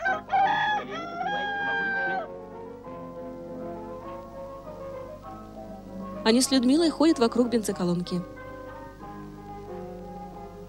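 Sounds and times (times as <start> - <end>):
rooster crowing at a petrol station: 0.0 - 2.3
speech: 6.3 - 8.4.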